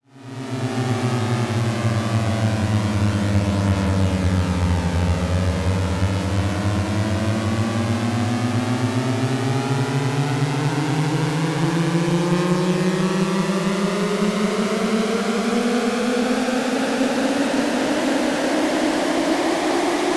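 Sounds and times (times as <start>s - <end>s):
random swarm of sirens: 0.2s - 20.1s.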